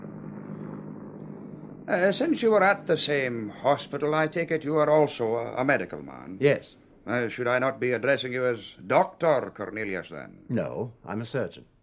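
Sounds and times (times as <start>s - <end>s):
low-flying helicopter from a naval training station: 0.0s - 1.9s
speech: 1.9s - 11.7s.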